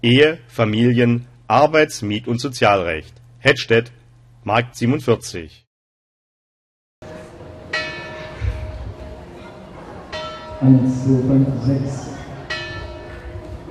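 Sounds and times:
speech: 0:00.0 - 0:05.6, 0:10.6 - 0:12.1
church bells of the St. Jakobi church in Hettstedt, Germany, ringing: 0:07.6 - 0:13.6.

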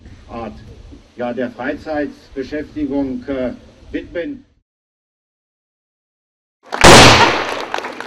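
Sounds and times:
speech: 0:00.3 - 0:04.5
model cannon shot booming at a shooting range: 0:06.8 - 0:07.7.

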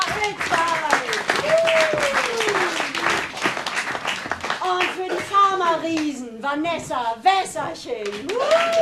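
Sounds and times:
audience applause at a satirical comedy stage show: 0:00.1 - 0:05.2, 0:08.2 - 0:08.8
speech: 0:05.9 - 0:08.8.

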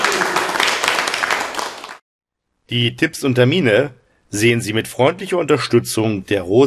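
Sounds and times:
audience applause: 0:00.0 - 0:02.0
speech: 0:02.7 - 0:06.6.

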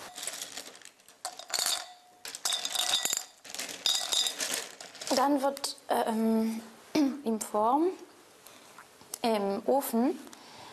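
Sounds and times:
small glass pieces clinking and rattling while being weighed: 0:00.0 - 0:04.9
speech: 0:05.1 - 0:08.1, 0:09.2 - 0:10.3.

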